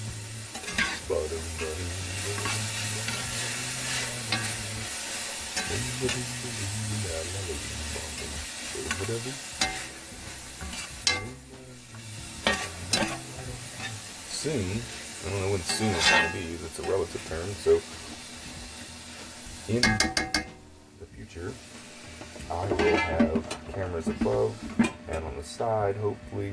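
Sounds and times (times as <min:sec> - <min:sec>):
fried rice sizzling while stir-fried in a pan: 0:00.0 - 0:26.5
utensil clanking and knocking on a pan: 0:00.5 - 0:06.4, 0:07.6 - 0:10.0, 0:10.6 - 0:11.4, 0:12.4 - 0:14.0, 0:14.8 - 0:17.3, 0:19.7 - 0:20.6, 0:22.2 - 0:25.3
utensil scraping and stirring in a pan: 0:00.5 - 0:11.4, 0:12.2 - 0:20.5, 0:21.6 - 0:25.2
speech: 0:01.1 - 0:02.8, 0:05.7 - 0:06.7, 0:09.1 - 0:09.5, 0:14.4 - 0:18.0, 0:19.7 - 0:20.4, 0:21.3 - 0:21.8, 0:22.5 - 0:26.5.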